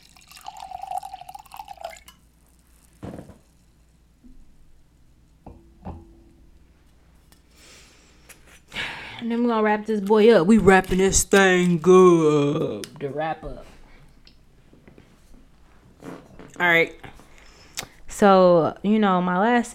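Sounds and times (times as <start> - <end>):
wine dripping: 0.0 - 3.0
wine pouring into a glass: 0.0 - 3.6
faint clink against the glass: 0.1 - 2.2, 5.4 - 6.6
speech: 9.2 - 13.7, 16.6 - 17.1, 18.2 - 19.7.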